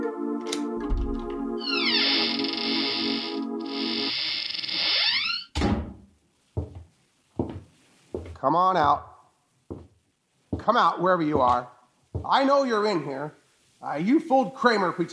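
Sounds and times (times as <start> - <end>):
solid thunks and clicks: 0.4 - 1.4
door unlatched and pushed open with a long wavering creak: 0.4 - 5.8
speech: 8.4 - 9.1, 10.6 - 15.1.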